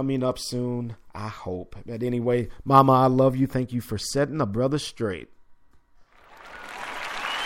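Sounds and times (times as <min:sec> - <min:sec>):
speech: 0:00.0 - 0:05.4
crowd applauding: 0:06.2 - 0:07.4.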